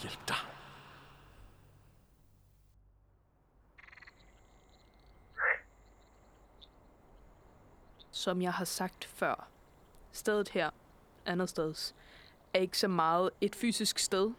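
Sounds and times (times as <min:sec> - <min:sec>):
speech: 0:00.0 - 0:00.5, 0:08.2 - 0:09.6, 0:10.2 - 0:14.3
frogs croaking at night: 0:00.0 - 0:01.5, 0:03.7 - 0:10.0
low ambient hiss: 0:00.0 - 0:14.3.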